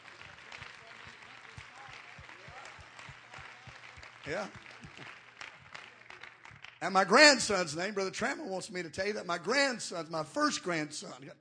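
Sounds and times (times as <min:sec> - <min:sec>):
audience clapping in a rhythmic beat: 0:00.0 - 0:08.3
speech: 0:04.2 - 0:04.6, 0:06.8 - 0:11.3.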